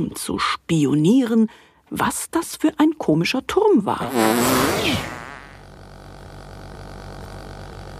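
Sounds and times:
speech: 0.0s - 5.2s
cartoon fart sound effect: 4.0s - 5.7s.

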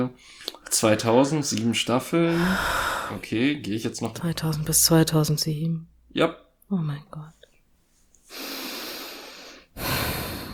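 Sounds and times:
speech: 0.0s - 7.4s, 8.3s - 8.6s
heavy breathy exhalations: 2.3s - 3.3s, 8.3s - 10.5s.

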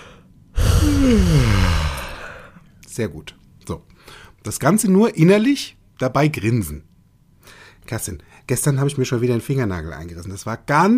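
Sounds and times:
loud yawn: 0.0s - 2.6s
speech: 0.9s - 1.6s, 3.0s - 6.9s, 7.5s - 10.9s.

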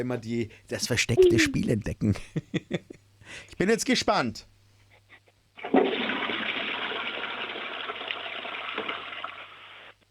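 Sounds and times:
speech: 0.0s - 4.6s
toilet flushing: 5.6s - 9.7s.

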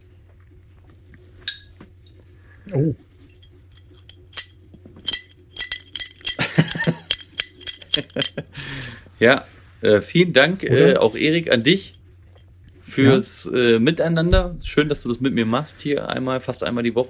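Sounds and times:
glasses clinking in a toast: 1.5s - 1.8s, 3.4s - 8.4s
speech: 2.7s - 3.1s, 8.0s - 12.0s, 13.0s - 17.0s
laughter: 6.4s - 7.0s.

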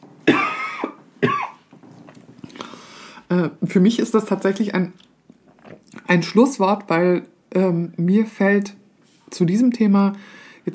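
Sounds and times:
loud harsh coughs: 0.2s - 1.7s
faint breathy sounds: 2.5s - 3.3s, 10.2s - 10.7s
speech: 3.3s - 5.1s, 6.1s - 10.7s.

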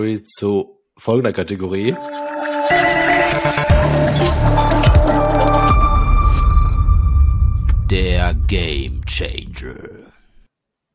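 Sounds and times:
speech: 0.0s - 5.3s, 7.9s - 10.0s
podcast category jingle with sound effects: 2.0s - 9.0s.

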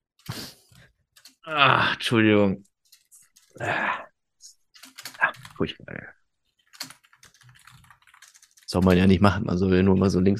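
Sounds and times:
typing on a computer keyboard: 1.1s - 1.4s, 4.8s - 5.6s, 6.6s - 9.1s
speech: 1.5s - 2.7s, 3.6s - 4.0s, 5.6s - 6.2s, 8.7s - 10.3s.

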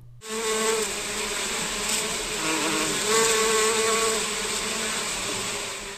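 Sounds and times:
honeybees swarming and buzzing around their hives: 0.2s - 5.9s.

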